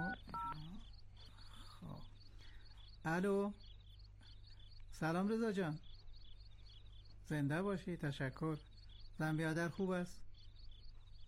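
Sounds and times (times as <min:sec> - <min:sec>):
mobile phone keypad beeps from dialing a number: 0:00.0 - 0:00.7
speech: 0:03.0 - 0:03.6, 0:05.0 - 0:05.9, 0:07.3 - 0:10.2.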